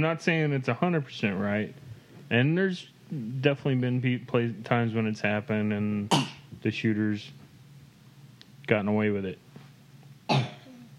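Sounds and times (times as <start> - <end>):
speech: 0.0 - 7.4, 8.7 - 9.4
deep bassy cough with a low trailing rasp: 6.0 - 6.5, 10.3 - 10.8.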